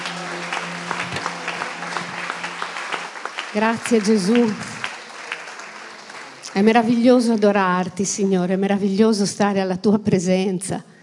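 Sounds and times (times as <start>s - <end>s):
audience applauding: 0.0s - 7.3s
speech: 3.6s - 4.7s, 6.6s - 10.9s.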